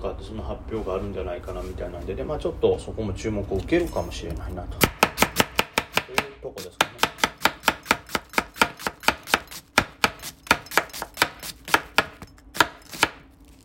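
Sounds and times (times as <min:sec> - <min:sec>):
speech: 0:00.0 - 0:05.0, 0:06.1 - 0:07.2
knife chopping onions on a board for curry: 0:04.8 - 0:13.2.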